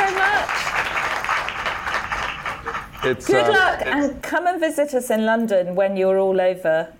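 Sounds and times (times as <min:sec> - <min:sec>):
crowd applauding: 0:00.0 - 0:03.8
speech: 0:03.0 - 0:06.9.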